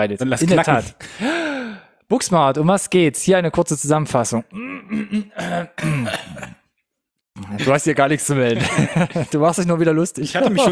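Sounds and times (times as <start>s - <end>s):
speech: 0.0s - 1.4s, 2.1s - 6.4s, 7.5s - 10.7s
person clearing throat: 4.5s - 6.7s
laughter: 8.4s - 9.6s.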